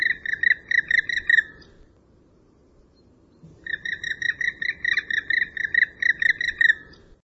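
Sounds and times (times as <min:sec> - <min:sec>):
bird calling in chattering bursts of buzzy notes: 0:00.0 - 0:01.8, 0:03.4 - 0:07.1.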